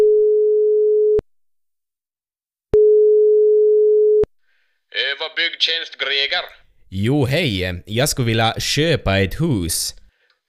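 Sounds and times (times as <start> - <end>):
telephone line tone after dialing a number: 0.0 - 1.2, 2.8 - 4.3
speech: 5.4 - 10.0.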